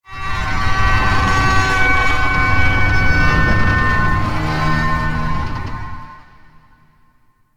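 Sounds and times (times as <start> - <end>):
low creaks: 1.0 - 6.8.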